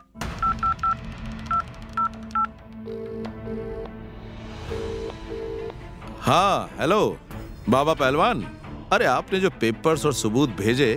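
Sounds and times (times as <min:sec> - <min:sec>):
electronic telephone keypad beeps: 0:00.0 - 0:03.8
longer steady telephone ringing tone: 0:02.4 - 0:03.9, 0:04.7 - 0:05.8
speech: 0:06.3 - 0:10.9.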